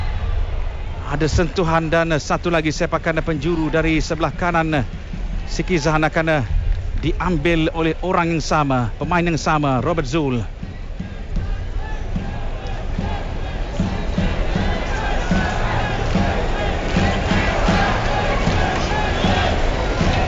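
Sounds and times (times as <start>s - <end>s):
speech: 1.1s - 10.6s
large crowd of visiting football fans chanting in a stadium: 10.7s - 20.2s.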